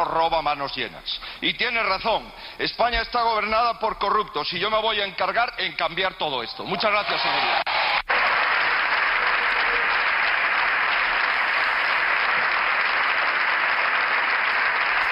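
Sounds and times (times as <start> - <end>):
speech: 0.0 - 7.7
parliamentary bench applauding a speech: 6.7 - 15.1.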